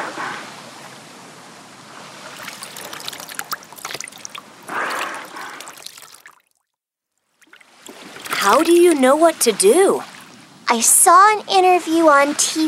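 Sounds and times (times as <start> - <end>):
water poured and splashing onto a dolphin near the beach: 2.0 - 6.7, 7.3 - 10.4
speech: 8.5 - 10.1, 10.7 - 12.6.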